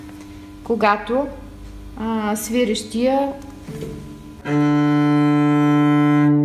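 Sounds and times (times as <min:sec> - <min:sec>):
speech: 0:00.7 - 0:01.4, 0:02.0 - 0:04.9
cello string bowed with a low sustained note: 0:03.7 - 0:06.4.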